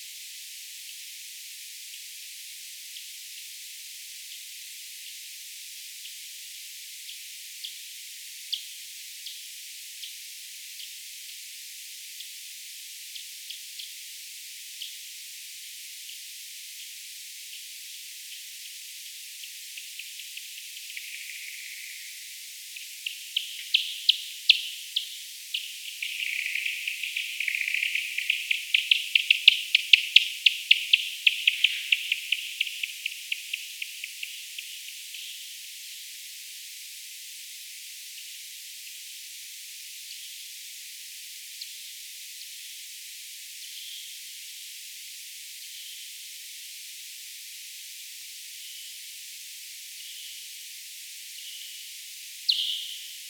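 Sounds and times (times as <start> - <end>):
Eptesicus serotinus nasal FM echolocation calls in woodland: 19.7 - 35.5, 52.4 - 53.2.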